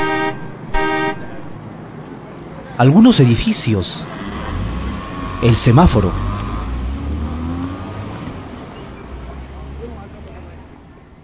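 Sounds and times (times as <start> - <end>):
loud car horn honks: 0.0 - 1.6
steady rumble of street traffic: 0.0 - 11.2
speech: 2.8 - 4.2, 5.4 - 6.3.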